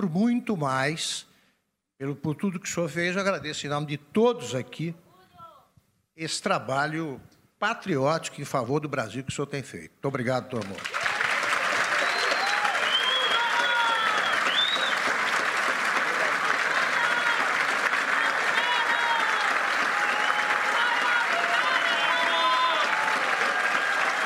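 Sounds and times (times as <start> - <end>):
speech: 0.0 - 1.3, 2.0 - 5.0, 6.2 - 11.0
large audience standing ovation at a press conference in Brazil: 10.6 - 24.2
audience whistles: 11.8 - 15.2.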